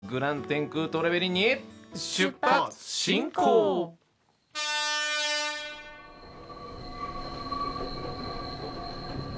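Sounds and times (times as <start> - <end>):
speech: 0.1 - 4.0
train horn blaring: 4.5 - 6.5
train rolling along the rails: 5.8 - 9.3
train wheels squealing: 5.8 - 9.3.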